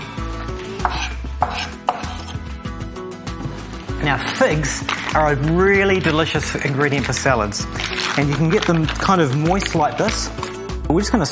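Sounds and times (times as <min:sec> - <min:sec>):
knife finely chopping raw onion: 0:00.7 - 0:02.4
speech: 0:04.0 - 0:11.3.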